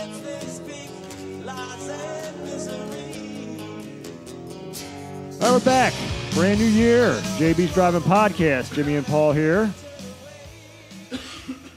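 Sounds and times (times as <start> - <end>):
speech: 5.4 - 9.8
short coughs: 11.1 - 11.7.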